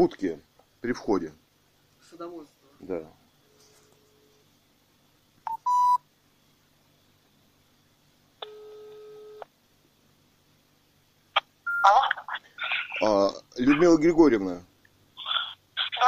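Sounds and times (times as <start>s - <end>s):
speech: 0.0s - 1.4s, 2.1s - 3.2s, 13.0s - 14.7s
short electronic phone beep: 5.5s - 6.0s, 11.7s - 12.0s
steady telephone ringback tone on a quiet line: 8.4s - 9.4s.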